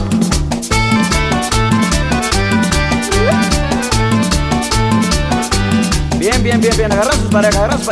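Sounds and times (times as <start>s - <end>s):
crisp rhythmic percussion: 0.0s - 7.9s
lively accordion melody: 0.8s - 6.2s
steady bouncing bass line: 2.4s - 5.4s
speech: 6.6s - 7.9s.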